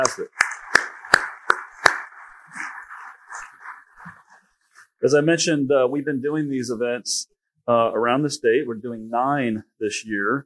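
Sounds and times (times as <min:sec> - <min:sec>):
speech: 0:00.0 - 0:00.4, 0:05.0 - 0:10.4
sharp loud claps: 0:00.0 - 0:03.4
scattered clapping from an audience of about 300 people at an event in East Central Indiana: 0:00.0 - 0:04.3.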